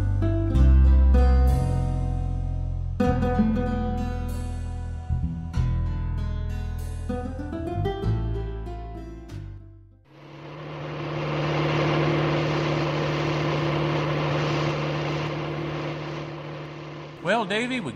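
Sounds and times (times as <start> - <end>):
music: 0.0 - 10.1
car engine driving off: 10.1 - 17.9
speech: 17.3 - 17.9.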